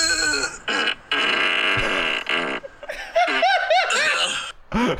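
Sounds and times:
long buzzing fart: 0.1 - 2.7
laughter: 2.6 - 4.9.

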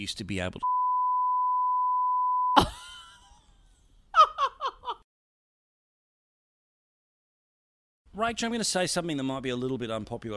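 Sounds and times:
speech: 0.0 - 0.8, 8.2 - 10.3
censor beep covering speech: 0.6 - 2.6.

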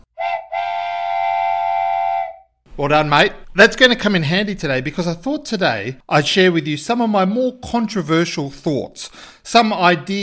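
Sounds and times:
loud sustained train whistle blast: 0.1 - 2.5
speech: 2.8 - 10.2.

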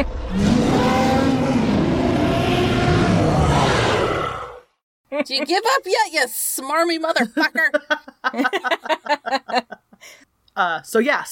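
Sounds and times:
speech: 0.0 - 0.5, 5.2 - 11.2
huge dragon roaring and bellowing: 0.0 - 4.8
laughter: 7.2 - 9.9.

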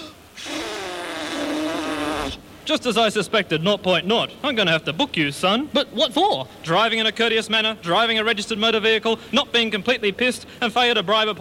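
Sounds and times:
driver blowing into a police breathalyzer during a breath test: 0.0 - 2.4
speech: 2.7 - 11.3.

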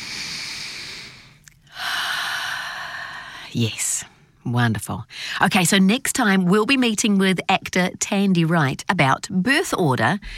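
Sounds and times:
big breath taken: 0.0 - 3.4
speech: 3.5 - 10.3.

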